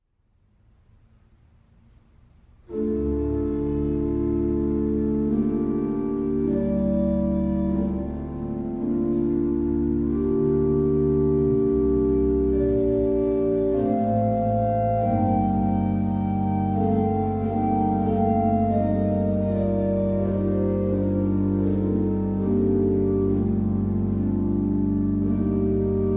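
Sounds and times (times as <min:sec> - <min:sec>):
organ interlude: 0:02.6 - 0:26.1.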